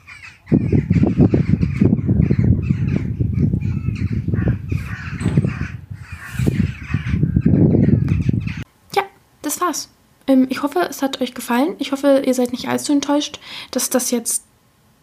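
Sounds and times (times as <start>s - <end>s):
birds chirping and calling in early morning: 0.0s - 8.7s
speech: 9.7s - 14.5s.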